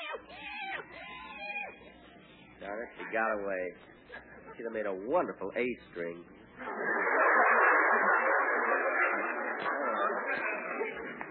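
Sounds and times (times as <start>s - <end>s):
cat yowling: 0.0s - 2.0s
speech: 2.7s - 7.1s
laughter: 3.0s - 5.0s, 6.6s - 11.3s.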